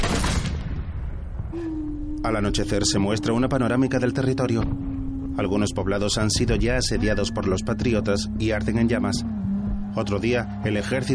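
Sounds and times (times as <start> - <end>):
firing squad volley of gunfire at prisoners in a period film: 0.0 - 0.9
speech: 1.5 - 9.4, 10.0 - 11.1.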